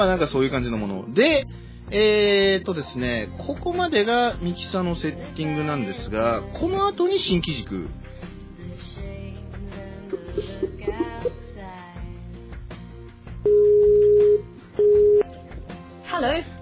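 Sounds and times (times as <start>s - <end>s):
speech: 0.0s - 8.1s
mixed sound: 10.2s - 11.3s
electronic call tones from an internet voice-call test service: 13.5s - 15.3s.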